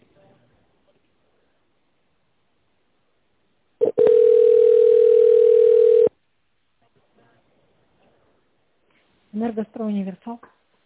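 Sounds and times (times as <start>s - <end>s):
telephone line tone while waiting to connect to an operator: 3.8s - 6.1s
speech: 9.5s - 10.6s.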